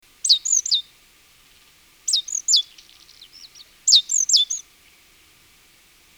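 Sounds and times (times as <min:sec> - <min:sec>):
Great tit Parus major chirping: 0:00.2 - 0:00.9, 0:02.1 - 0:04.7.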